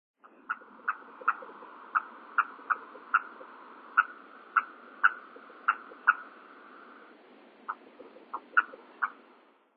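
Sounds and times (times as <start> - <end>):
nightjar calling: 0.2 - 9.4.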